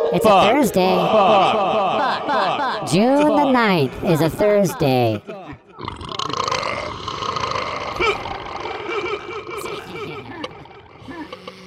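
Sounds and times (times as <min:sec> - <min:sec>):
speech: 0:00.1 - 0:05.4
laughter: 0:00.2 - 0:06.7, 0:08.0 - 0:11.6
long gravelly burp: 0:05.7 - 0:11.6.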